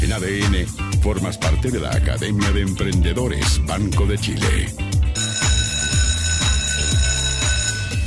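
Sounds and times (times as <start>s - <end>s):
speech: 0.2s - 4.9s
loud electric school bell ringing: 5.0s - 8.0s.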